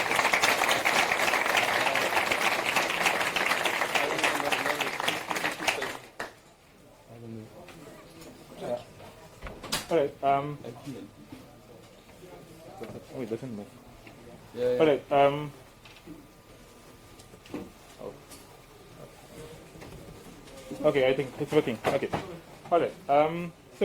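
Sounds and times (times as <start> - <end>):
audience applause: 0.0 - 6.4
speech: 9.9 - 11.2, 13.2 - 13.8, 14.5 - 16.2, 20.8 - 23.8.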